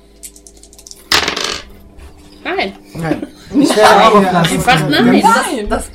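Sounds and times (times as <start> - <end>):
dice rolling for a plant-lore skill check in a tabletop role-playing game: 0.2 - 1.7
speech: 2.5 - 5.9.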